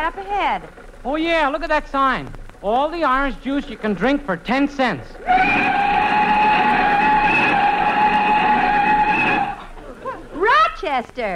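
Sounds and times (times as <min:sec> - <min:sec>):
speech: 0:00.0 - 0:05.8, 0:10.8 - 0:11.3
car tires screeching as car brakes hard and skids to a stop: 0:05.3 - 0:09.7.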